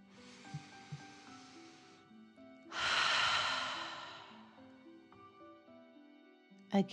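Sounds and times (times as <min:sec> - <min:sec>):
deep breath in and out during a fire-breathing exercise: 0:00.0 - 0:04.9.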